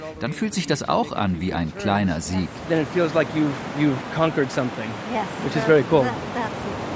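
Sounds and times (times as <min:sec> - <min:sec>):
speech: 0:00.2 - 0:06.6
ocean surf waves rolling in: 0:01.7 - 0:06.9.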